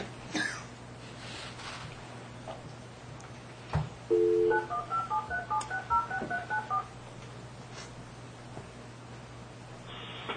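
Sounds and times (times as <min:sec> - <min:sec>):
low hum: 0:00.0 - 0:10.3
electronic telephone keypad touch-tone beeps: 0:04.1 - 0:06.9
telephone dial tone: 0:04.1 - 0:06.9.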